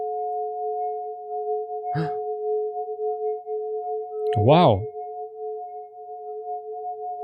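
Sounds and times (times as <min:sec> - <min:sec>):
two pure sine tones through a reverb plugin: 0:00.0 - 0:07.2
speech: 0:02.0 - 0:02.2, 0:04.4 - 0:04.9
person exclaiming: 0:04.4 - 0:04.9.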